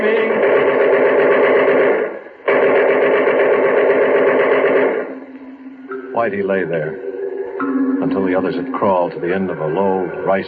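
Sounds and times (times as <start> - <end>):
machine gun fire: 0.0 - 5.3
speech: 6.2 - 7.0, 7.6 - 10.4.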